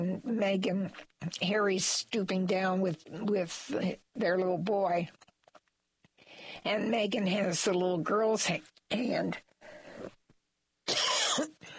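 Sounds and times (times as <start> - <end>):
speech: 0.2 - 5.3, 6.4 - 10.1
cough clearing a tickle in the throat: 10.9 - 11.6.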